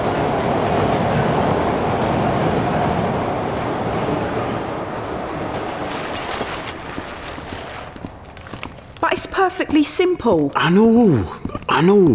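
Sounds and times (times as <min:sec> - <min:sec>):
train passing through a station without stopping: 0:00.0 - 0:09.6
speech: 0:09.4 - 0:12.1.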